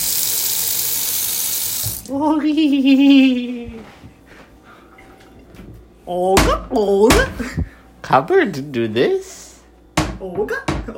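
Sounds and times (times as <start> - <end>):
kitchen sink tap running water: 0.0 - 2.2
speech: 2.1 - 4.1, 6.1 - 9.4, 10.2 - 10.9.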